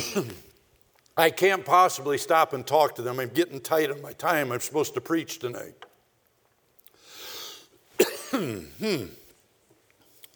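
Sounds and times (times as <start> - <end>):
person coughing from a tickled throat: 0.0 - 0.5, 8.0 - 9.3
speech: 0.0 - 0.5, 1.2 - 5.9, 8.4 - 9.2
soft breathy inhale: 7.0 - 7.8.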